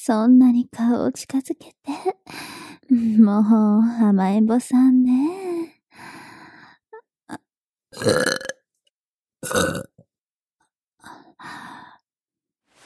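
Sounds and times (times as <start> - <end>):
speech: 0.0 - 6.1, 8.0 - 8.4, 9.4 - 9.9
small breathy sounds: 5.3 - 7.0, 11.0 - 12.0
mother burping: 7.3 - 8.6, 9.4 - 10.0.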